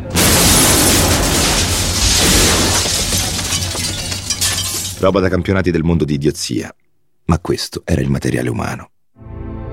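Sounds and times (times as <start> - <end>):
loud bomb explosion: 0.1 - 4.4
scattering debris: 0.1 - 5.2
speech: 5.0 - 8.9.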